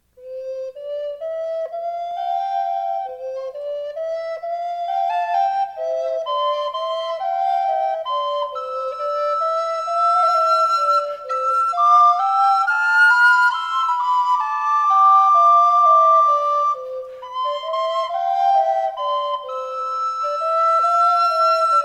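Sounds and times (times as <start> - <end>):
Quebecois folk song on recorder: 0.0 - 21.8.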